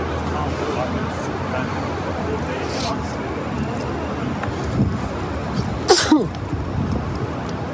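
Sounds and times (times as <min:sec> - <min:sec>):
outdoor city noise at Bank and Albert streets in downtown Ottawa: 0:00.0 - 0:07.7
person with allergies sneezing outdoors: 0:05.9 - 0:06.3.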